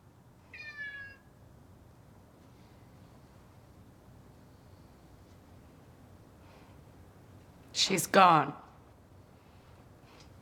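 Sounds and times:
quiet hum: 0.0s - 10.4s
cat meowing on a kitchen windowsill: 0.5s - 1.3s
speech: 7.8s - 8.6s.

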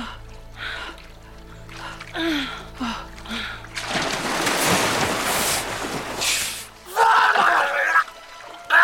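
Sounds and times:
water sloshing: 0.6s - 6.9s
water from a pool splashing onto neck and face: 0.8s - 8.8s.

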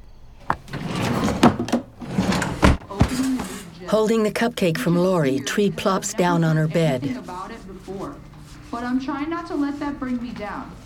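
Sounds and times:
wooden top dresser drawer sliding and bumping shut: 0.5s - 3.6s
speech: 3.9s - 7.5s, 8.8s - 10.8s.

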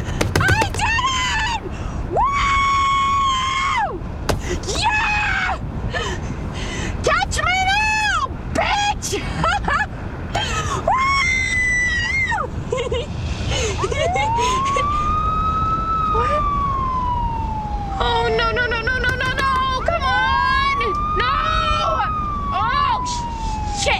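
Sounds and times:
steady rumble of road noise: 0.0s - 23.9s
police car siren wailing and yelping: 14.1s - 23.9s.

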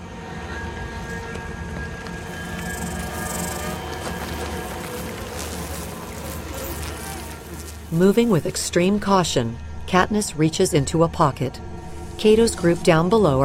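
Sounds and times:
swarm of insects buzzing around a nest: 2.0s - 8.9s
speech: 7.9s - 13.4s.

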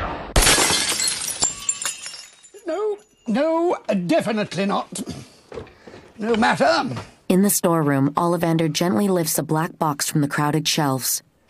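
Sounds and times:
ceramic vase shattering: 0.4s - 3.3s
ceramic vase fragments tinkling and clinking: 0.4s - 3.8s
speech: 3.3s - 5.0s, 5.6s - 11.3s.

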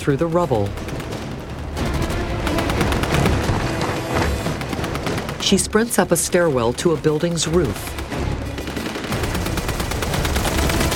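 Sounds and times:
speech: 0.0s - 0.9s, 5.4s - 8.0s
automatic gunfire bursts on a building's rooftop: 0.6s - 5.7s, 7.7s - 10.9s.

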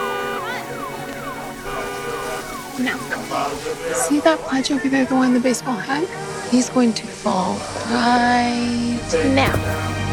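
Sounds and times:
car alarm wailing: 0.0s - 4.2s
speech: 2.8s - 10.0s.

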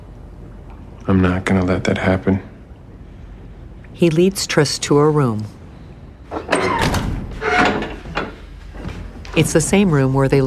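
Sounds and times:
speech: 1.0s - 2.5s, 4.0s - 5.6s, 9.4s - 10.4s
heavy door sliding and thudding shut: 6.3s - 8.3s.

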